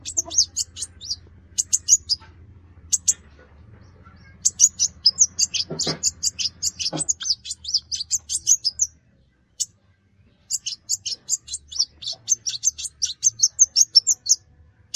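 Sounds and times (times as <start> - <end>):
brown-throated sunbird singing rapid high twittering notes: 0.0 - 2.3, 2.9 - 3.2, 4.2 - 8.9, 10.5 - 14.4
low hum: 0.0 - 14.9.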